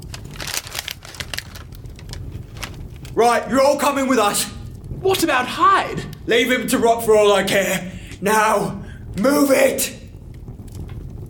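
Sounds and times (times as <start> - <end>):
paper crinkling and rustling: 0.0 - 3.2
speech: 3.2 - 10.0.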